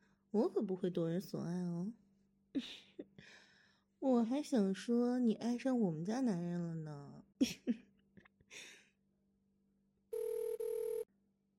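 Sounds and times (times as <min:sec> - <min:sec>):
speech: 0:00.3 - 0:03.4, 0:04.0 - 0:07.8
telephone ringing with electronic tone: 0:10.1 - 0:11.1.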